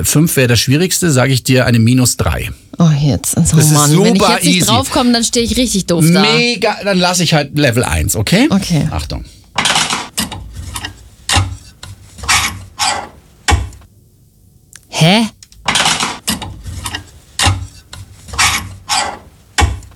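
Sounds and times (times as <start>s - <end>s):
speech: 0.0s - 9.4s, 15.0s - 15.3s
clothes hanger scraping along a metal wardrobe rail: 9.6s - 13.4s, 15.6s - 19.9s.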